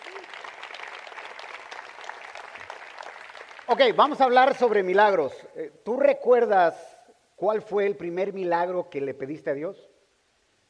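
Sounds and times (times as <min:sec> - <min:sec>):
audience applauding for soldiers: 0:00.0 - 0:04.3
speech: 0:03.7 - 0:09.9.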